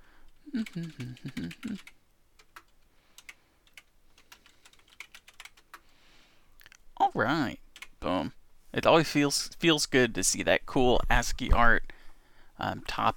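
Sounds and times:
typing on a computer keyboard: 0.3s - 5.8s, 7.7s - 7.9s
speech: 0.5s - 2.0s, 7.2s - 11.9s, 12.6s - 13.1s.

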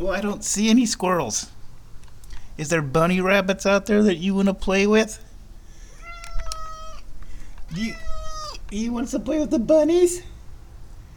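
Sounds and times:
speech: 0.0s - 1.6s, 2.6s - 5.2s, 7.7s - 8.1s, 8.7s - 10.3s
cat meowing: 5.8s - 7.1s, 7.7s - 8.8s.

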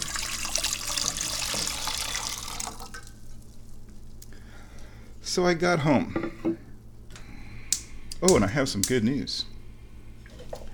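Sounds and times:
tea pouring into a tea reheating vessel: 0.0s - 3.6s
quiet room hum: 0.0s - 10.7s
speech: 5.3s - 6.6s, 8.2s - 9.5s.

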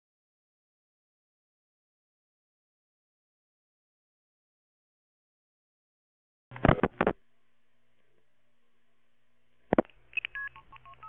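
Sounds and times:
electronic telephone sounds: 6.5s - 7.2s, 9.7s - 11.0s
low buzz: 6.5s - 11.0s
telephone keypad dialing tones: 10.1s - 11.0s.

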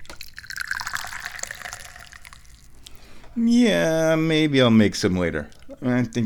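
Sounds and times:
tea pouring into a cup: 0.0s - 3.0s
speech: 3.4s - 6.2s.

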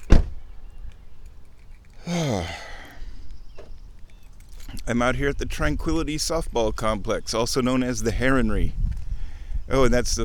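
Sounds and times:
car door shutting in a parking lot: 0.0s - 0.4s
quiet outdoor background: 0.0s - 10.2s
speech: 4.9s - 8.8s, 9.7s - 10.2s.

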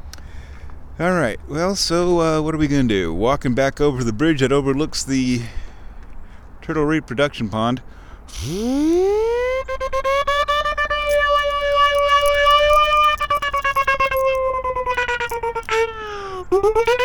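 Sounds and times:
speech: 1.0s - 5.6s, 6.6s - 9.2s
siren wailing: 8.3s - 17.0s.

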